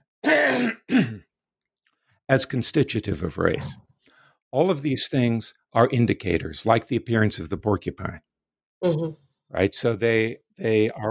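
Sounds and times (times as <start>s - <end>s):
person clearing throat in rough voiced bursts: 0.2s - 1.2s
speech: 2.3s - 3.9s, 4.5s - 11.0s.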